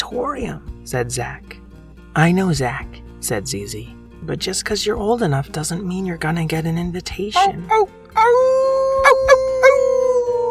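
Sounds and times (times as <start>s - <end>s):
speech: 0.1s - 8.5s
werewolf howling: 7.4s - 10.4s.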